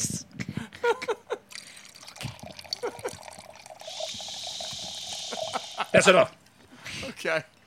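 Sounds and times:
wine pouring from a bottle into a glass: 1.5s - 6.2s
speech: 6.0s - 6.4s, 7.2s - 7.6s.

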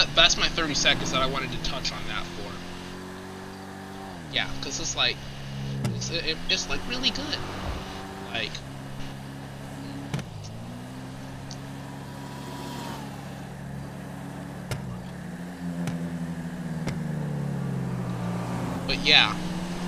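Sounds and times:
video game car engine droning: 0.0s - 19.8s
speech: 0.2s - 2.4s, 4.3s - 5.3s, 6.1s - 7.7s, 8.3s - 8.7s, 19.0s - 19.5s
brief sharp clicks: 16.8s - 17.1s.

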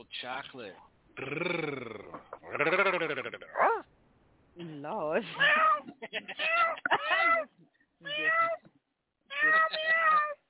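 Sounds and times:
speech: 0.0s - 3.9s, 4.6s - 8.6s
laughter: 5.3s - 7.4s
cat meowing: 5.3s - 8.6s, 9.3s - 10.4s.

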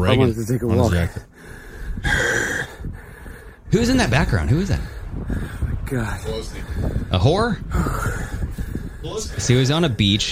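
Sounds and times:
speech: 0.0s - 2.4s, 3.7s - 8.4s, 9.0s - 10.3s
man breathing heavily through his mouth: 1.1s - 3.7s, 4.8s - 9.6s.

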